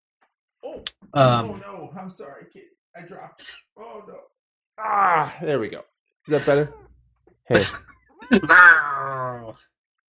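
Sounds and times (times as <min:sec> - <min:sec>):
speech: 0:00.8 - 0:06.8, 0:07.5 - 0:09.8
laughter: 0:07.5 - 0:08.9
domestic cat meowing: 0:08.4 - 0:09.4.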